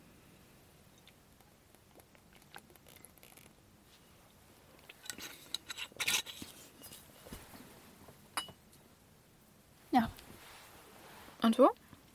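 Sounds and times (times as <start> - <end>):
glass clinking: 8.4 - 8.6
speech: 11.5 - 11.8.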